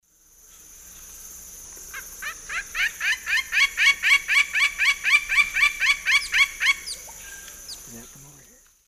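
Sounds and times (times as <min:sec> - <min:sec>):
Dryocopus lineatus calling in the Eastern Lowlands of South America: 0:01.9 - 0:08.5.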